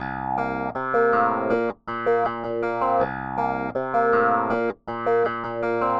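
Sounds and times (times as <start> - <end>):
bass ghost notes: 0.0 - 5.9
funk piano: 0.0 - 5.9.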